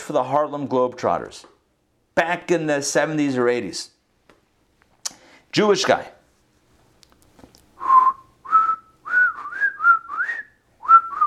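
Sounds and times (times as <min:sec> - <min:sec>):
speech: 0:00.1 - 0:01.6, 0:02.2 - 0:04.0, 0:05.5 - 0:06.2
person whistling a theme song tune: 0:07.8 - 0:11.2.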